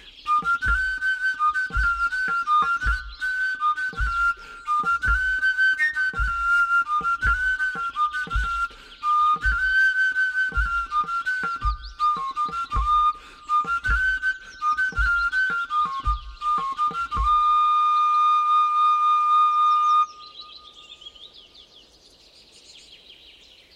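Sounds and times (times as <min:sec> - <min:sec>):
willow bark whistle playing a bouncy tune: 0:00.0 - 0:20.2
steady low thumping beat: 0:00.4 - 0:05.5, 0:06.1 - 0:09.8, 0:10.5 - 0:17.6.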